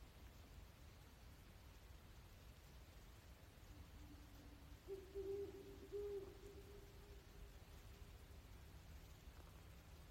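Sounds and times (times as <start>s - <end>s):
background hiss: 0.0s - 10.0s
great horned owl Bubo virginianus hooting in Maryland United States: 3.6s - 7.6s.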